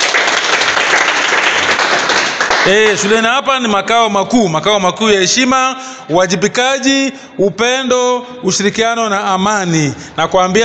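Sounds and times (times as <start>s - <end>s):
audience at a school gathering applauding: 0.0s - 3.2s
speech: 2.6s - 10.6s.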